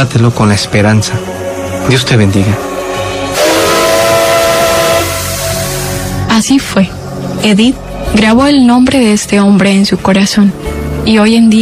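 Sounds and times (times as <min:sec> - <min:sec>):
speech: 0:00.0 - 0:02.7, 0:06.4 - 0:11.6
hissing steam from a steam train: 0:02.6 - 0:06.3
steam train whistle blast: 0:03.3 - 0:06.3.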